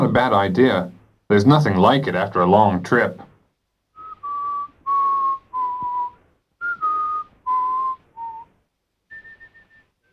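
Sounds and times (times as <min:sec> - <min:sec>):
speech: 0:00.0 - 0:03.3
man whistling a simple tune: 0:04.0 - 0:10.1.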